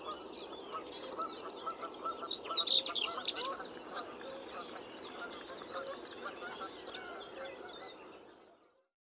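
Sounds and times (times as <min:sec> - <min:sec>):
Eurasian blue tit Cyanistes caeruleus trilling: 0:00.0 - 0:07.2.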